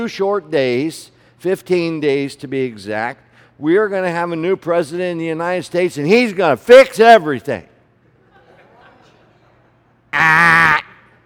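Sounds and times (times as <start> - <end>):
speech: 0.0 - 7.7, 10.2 - 10.6
loud nasal duck quack: 10.2 - 11.0.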